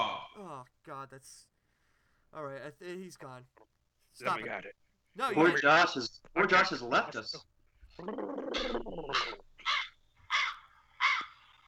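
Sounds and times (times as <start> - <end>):
speech: 0.6 - 1.5, 2.3 - 9.4
crows cawing while circling overhead: 8.6 - 11.6.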